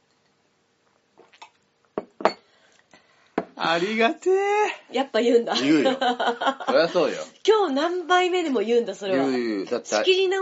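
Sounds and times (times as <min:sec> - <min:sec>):
glasses clinking in a toast: 0:02.0 - 0:02.5
speech: 0:03.6 - 0:10.4
laughter: 0:05.5 - 0:07.3.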